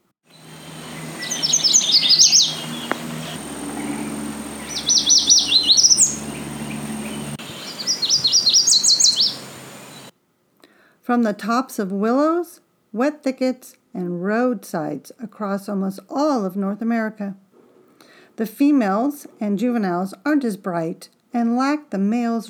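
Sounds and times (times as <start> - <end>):
low steady hum: 0.3 - 10.1
yellow warbler male whistled song: 0.3 - 10.1
speech: 11.1 - 17.4, 18.4 - 22.4.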